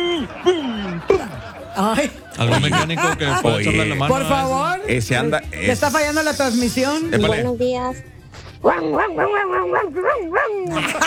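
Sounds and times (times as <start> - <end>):
laughter: 0.0 - 11.0
speech: 1.8 - 11.0
chihuahua-like small dog yapping high-pitched barks: 8.3 - 10.8.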